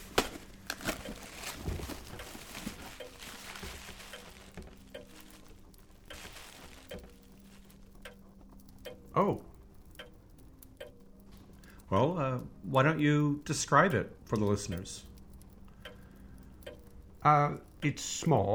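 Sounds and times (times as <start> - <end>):
small box packaging crinkling and rustling: 0.0 - 8.8
speech: 11.9 - 15.1, 17.2 - 18.5.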